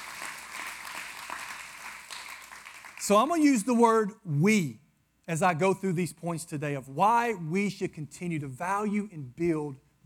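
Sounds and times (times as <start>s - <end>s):
church congregation clapping their hands: 0.0s - 3.4s
speech: 3.1s - 10.0s.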